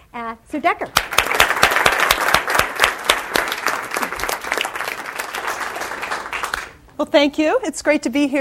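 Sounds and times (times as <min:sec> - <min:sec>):
speech: 0:00.1 - 0:01.4, 0:07.0 - 0:08.3
audience applause welcoming a speaker: 0:01.0 - 0:06.8.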